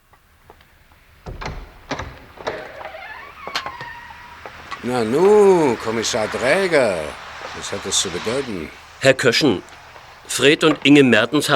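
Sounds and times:
door swinging open with a squeaky creak: 0.4s - 8.9s, 9.6s - 11.5s
door being unlatched with mechanical clunks and rattles: 1.2s - 4.8s
speech: 4.8s - 11.5s.

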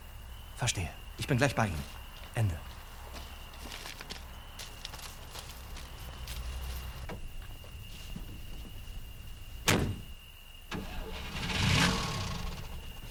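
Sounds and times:
speech: 0.6s - 2.6s
car door thudding shut: 9.6s - 10.2s
car engine starting and revving as the vehicle pulls away: 10.7s - 13.0s.

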